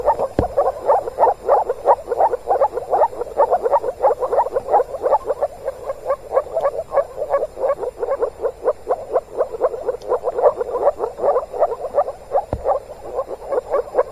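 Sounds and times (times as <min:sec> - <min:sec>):
moor frog chorus calling in spring: 0:00.0 - 0:14.1
faint clicks: 0:09.9 - 0:10.2.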